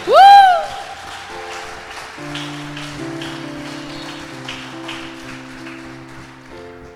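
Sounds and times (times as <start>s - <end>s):
audience at a church service applauding: 0.0s - 6.9s
sustained keyboard chords: 2.2s - 6.9s.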